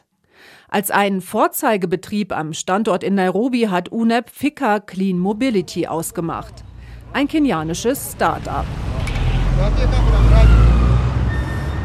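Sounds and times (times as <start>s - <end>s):
speech: 0.7s - 8.9s, 9.6s - 10.7s
voices: 5.2s - 11.4s
buses and cars in dense city street traffic: 5.2s - 11.8s
steady low engine rumble: 5.3s - 10.8s
vehicles rolling past: 5.3s - 11.8s.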